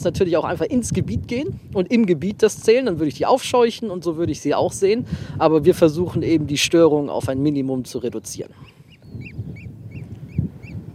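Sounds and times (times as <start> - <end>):
speech: 0.0 - 9.3
low busy murmur of other waterbirds: 8.1 - 10.9
Eurasian oystercatcher giving sharp high piping calls: 8.5 - 10.9.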